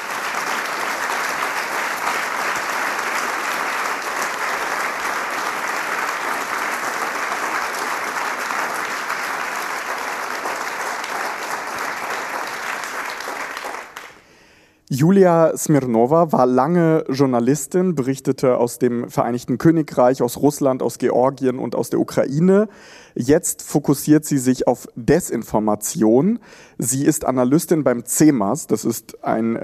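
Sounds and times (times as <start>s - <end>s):
large audience applauding: 0.0s - 14.2s
speech: 14.9s - 29.6s.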